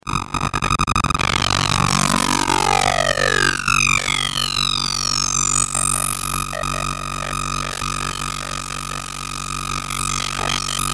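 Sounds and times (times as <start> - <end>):
fast electrical chopper digital hum: 0.0 - 10.9.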